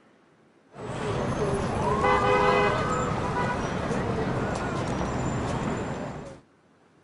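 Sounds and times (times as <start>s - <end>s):
Times Square traffic rumble: 0.7s - 7.0s
indistinct crowd chatter: 0.8s - 6.4s
car horns honking: 1.9s - 3.9s.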